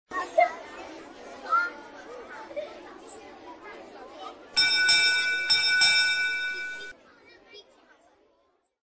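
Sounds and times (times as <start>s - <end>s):
children's bell ringing: 4.6s - 7.0s.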